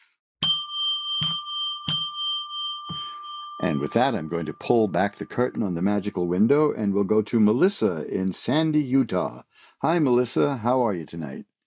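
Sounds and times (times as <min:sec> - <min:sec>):
small bright bell struck: 0:00.4 - 0:05.5
speech: 0:03.6 - 0:11.5.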